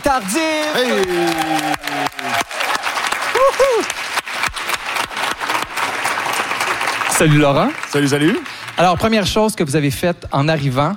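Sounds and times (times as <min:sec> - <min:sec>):
large crowd applauding loudly: 0:00.0 - 0:09.7
speech: 0:00.1 - 0:01.7, 0:07.2 - 0:10.9
people whooping: 0:00.6 - 0:04.1.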